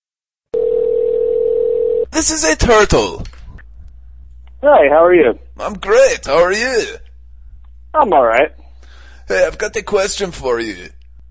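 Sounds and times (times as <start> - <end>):
telephone line tone at the start of a phone call: 0.6 - 2.1
speech: 2.2 - 3.3, 4.6 - 7.0, 7.9 - 8.6, 9.3 - 11.0.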